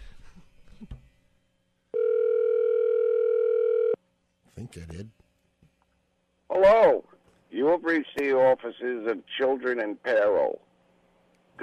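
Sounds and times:
telephone ringing tone on a call line: 0:01.9 - 0:04.0
speech: 0:04.7 - 0:05.2, 0:07.8 - 0:10.7.

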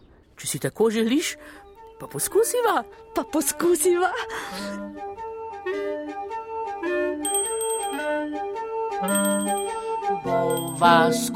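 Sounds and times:
speech: 0:00.4 - 0:05.8, 0:08.2 - 0:11.3
small bell tinkling: 0:07.2 - 0:08.3, 0:09.0 - 0:11.2.

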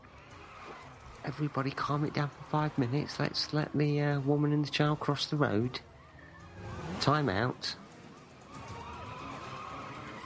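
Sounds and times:
car engines roaring in a film car chase: 0:00.0 - 0:10.2
tires squealing and skidding in a film car chase: 0:00.0 - 0:10.2
speech: 0:01.3 - 0:05.9, 0:07.0 - 0:07.8.

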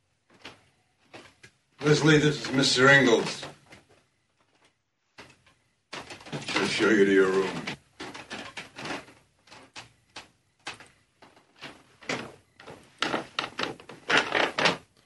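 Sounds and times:
floorboards creaking: 0:00.2 - 0:15.0
speech: 0:01.8 - 0:03.6, 0:06.8 - 0:07.7.

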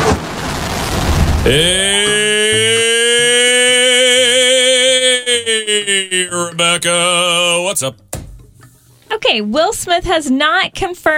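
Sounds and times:
rocket blast-off rumble: 0:00.0 - 0:01.9
speech: 0:01.4 - 0:02.2, 0:05.4 - 0:08.1, 0:09.1 - 0:11.1
laughter: 0:01.5 - 0:07.8.

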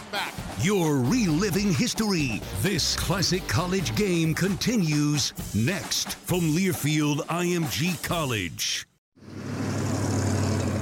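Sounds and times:
speech: 0:00.1 - 0:08.9
heavy rush hour road traffic with engine rumble and tire noise: 0:09.2 - 0:10.7.

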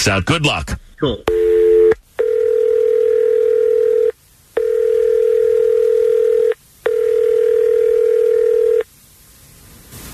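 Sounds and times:
speech: 0:00.0 - 0:01.3
long steady electronic telephone ring tones on the line: 0:01.3 - 0:08.8.

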